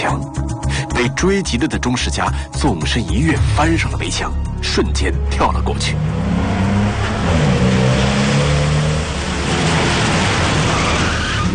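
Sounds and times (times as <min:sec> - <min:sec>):
speech: 0:01.0 - 0:06.5
sedan engine roaring: 0:03.3 - 0:11.5
sedan braking hard with tires skidding: 0:05.9 - 0:11.5.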